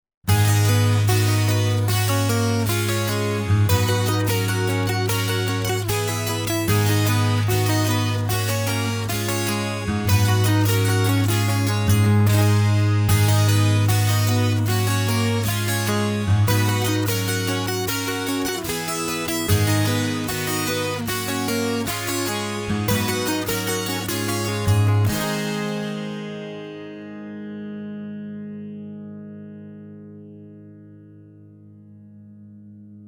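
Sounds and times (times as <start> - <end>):
acoustic guitars playing: 0.3 - 27.5.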